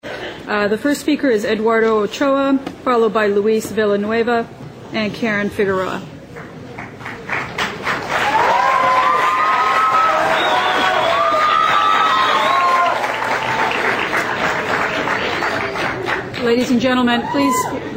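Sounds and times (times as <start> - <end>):
speech: 0.5 - 6.1, 16.5 - 17.9
dense clapping of audience: 6.4 - 16.6
large audience in a full auditorium cheering: 8.0 - 14.7
rising whistles: 9.8 - 12.9.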